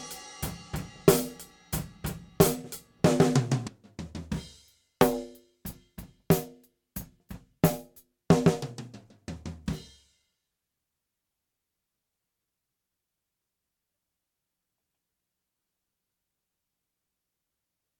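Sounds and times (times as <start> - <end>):
gated snare drum: 0.0 - 10.0.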